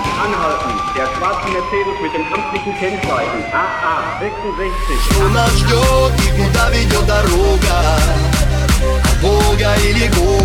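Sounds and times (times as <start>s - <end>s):
police siren wailing: 0.0s - 7.7s
speech: 0.2s - 10.4s
dense busy rhythmic backdrop: 4.7s - 10.4s.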